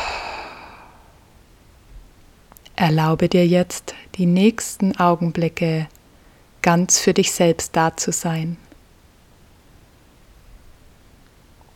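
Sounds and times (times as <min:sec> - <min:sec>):
deep breath out through an open mouth during a meditation exercise: 0:00.0 - 0:01.1
speech: 0:02.8 - 0:06.0, 0:06.6 - 0:08.7.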